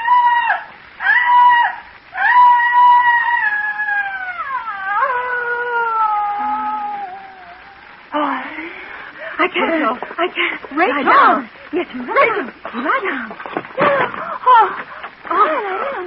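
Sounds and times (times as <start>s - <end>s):
loud high-pitched shrieking screams: 0.0s - 8.0s
speech: 9.5s - 16.0s.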